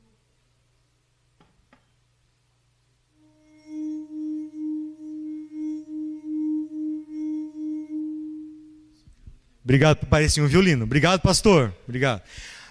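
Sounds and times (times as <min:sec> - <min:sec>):
rubbed wine glass singing a low steady tone: 0:03.2 - 0:09.0
speech: 0:09.7 - 0:12.6.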